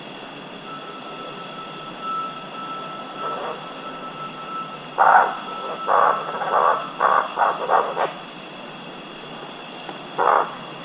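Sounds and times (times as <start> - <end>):
low constant hiss: 0.0 - 10.8
Moluccan scops owl Otus magicus albiventris croaking song notes: 0.7 - 8.4, 10.2 - 10.7.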